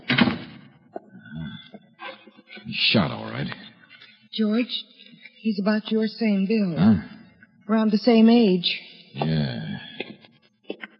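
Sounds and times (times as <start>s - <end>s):
door swinging shut with a thump and rattle: 0.0s - 0.6s
speech: 2.7s - 3.6s, 4.4s - 7.1s, 7.7s - 9.6s.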